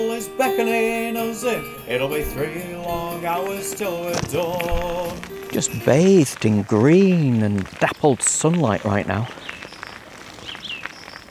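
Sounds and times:
speech: 0.0 - 9.6
faint woodland birdsong with short high chirps and whistles: 0.0 - 11.2.

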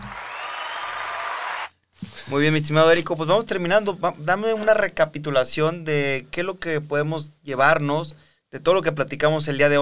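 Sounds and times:
dense burst of crowd applause: 0.0 - 1.7
speech: 2.3 - 9.8.

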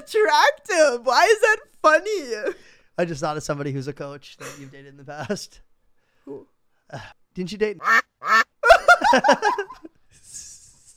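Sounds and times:
speech: 0.0 - 5.7, 6.3 - 8.5, 9.1 - 9.9
duck quacking: 7.8 - 8.5
laughter: 8.6 - 9.9.

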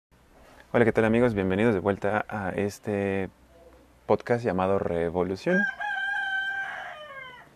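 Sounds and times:
speech: 0.7 - 3.4, 4.1 - 5.8
rooster crowing: 5.5 - 7.5.

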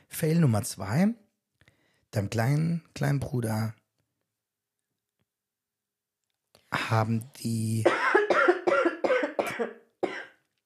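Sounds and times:
speech: 0.2 - 1.2, 2.1 - 3.8, 6.7 - 8.1, 9.6 - 9.8
person coughing harshly: 7.8 - 10.4.

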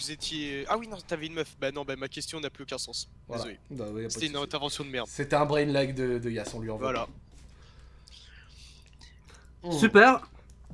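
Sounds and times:
speech: 0.0 - 7.3, 9.6 - 10.4
low hum: 0.0 - 10.7
person sipping water with wet slurps: 8.1 - 9.5.

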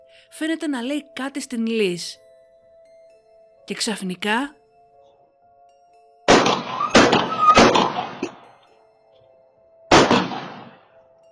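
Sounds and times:
speech: 0.3 - 2.2, 3.7 - 4.6
gunshots in a quiet neighbourhood: 6.3 - 8.4, 9.9 - 10.8.

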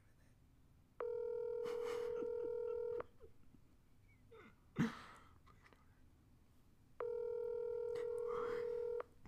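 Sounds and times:
electronic phone ringing on an unanswered call: 1.0 - 3.1, 7.0 - 9.1.

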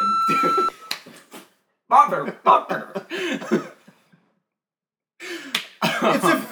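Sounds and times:
censor bleep tone: 0.0 - 0.9
laughter: 0.0 - 1.3, 1.9 - 4.1, 5.3 - 6.4
speech: 1.9 - 3.7.

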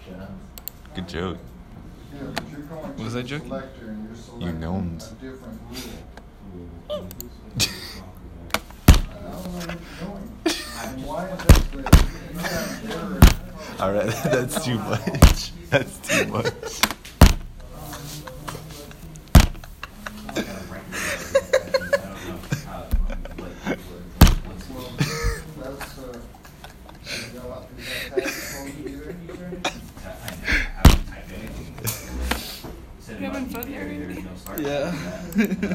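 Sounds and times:
speech: 0.1 - 1.5, 2.1 - 8.6, 9.2 - 16.9
laughter: 9.3 - 17.0, 17.7 - 32.5, 33.9 - 35.7
loud sharp slamming thuds: 17.2 - 17.5, 19.4 - 19.6.

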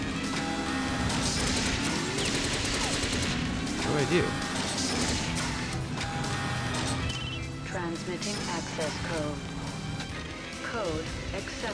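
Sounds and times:
busy video game noise: 0.0 - 11.7
machine gun fire in a video game: 1.2 - 5.7
speech: 4.0 - 4.6, 7.9 - 9.5, 10.7 - 11.7.

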